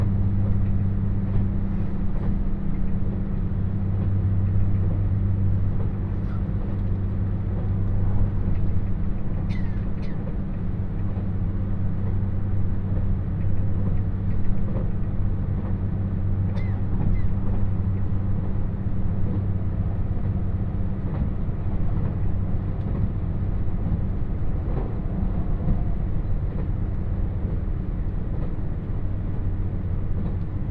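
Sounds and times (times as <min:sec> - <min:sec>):
limited express train engine drone on a rural line: 0:00.0 - 0:30.6.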